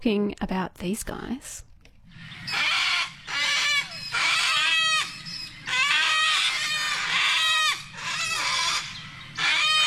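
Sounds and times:
speech: 0:00.0 - 0:02.7
sulphur-crested cockatoo screeching: 0:02.3 - 0:09.8.

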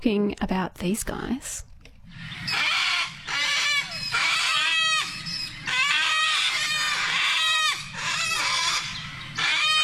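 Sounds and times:
speech: 0:00.0 - 0:02.7
sulphur-crested cockatoos screeching: 0:02.1 - 0:09.8.

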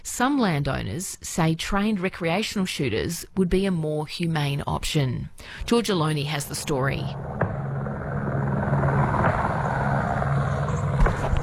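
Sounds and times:
speech: 0:00.1 - 0:07.4
helicopter flying over farmland: 0:05.5 - 0:11.4.

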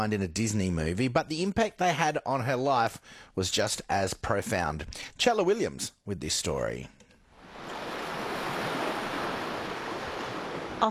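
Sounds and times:
speech: 0:00.0 - 0:07.0
ocean waves on bay shore off Narrabup in southwest Australia: 0:07.4 - 0:10.8.

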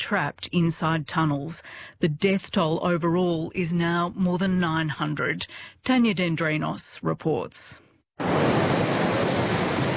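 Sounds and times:
speech: 0:00.1 - 0:09.1
muddy floodwater torrent rushing downstream after a glacier-triggered flash flood in central Nepal: 0:08.2 - 0:09.9.

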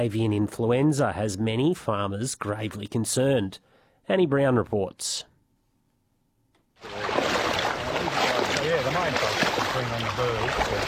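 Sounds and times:
speech: 0:00.0 - 0:05.3, 0:06.8 - 0:07.2, 0:08.9 - 0:10.8
legs in waders sloshing through knee-high wetland water: 0:06.8 - 0:10.8.

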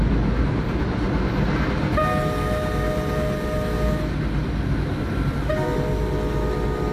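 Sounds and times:
train wheels rumbling on rails: 0:00.0 - 0:06.9
commuter train horn blasts: 0:01.9 - 0:04.2, 0:05.3 - 0:06.9.

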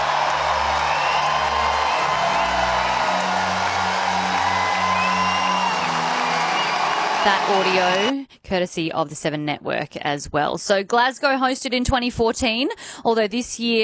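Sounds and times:
huge stadium crowd roaring and cheering in Glasgow Scotland: 0:00.0 - 0:08.2
speech: 0:07.2 - 0:13.8.

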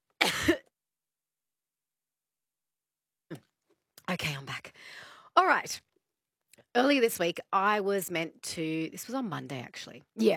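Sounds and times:
person coughing: 0:00.2 - 0:00.7
speech: 0:04.1 - 0:05.9, 0:06.7 - 0:10.3.

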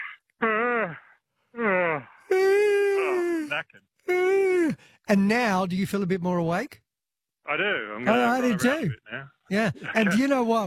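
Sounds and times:
deliberate human yawns: 0:00.0 - 0:04.9
speech: 0:05.1 - 0:06.8, 0:07.5 - 0:10.6.

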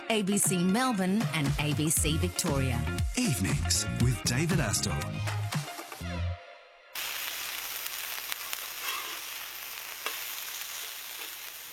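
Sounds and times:
speech: 0:00.1 - 0:05.4
sausages sizzling on a hot barbecue: 0:07.0 - 0:11.7.

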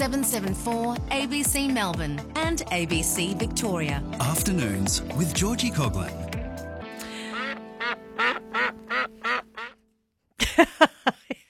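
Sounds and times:
speech: 0:00.0 - 0:06.3
duck quacking in a radio segment sting: 0:07.3 - 0:09.8.

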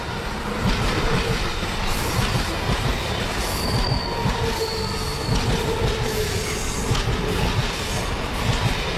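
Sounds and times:
train rumbling along the rails: 0:00.0 - 0:08.9
faint metallic squeal of train wheels: 0:03.4 - 0:06.9.

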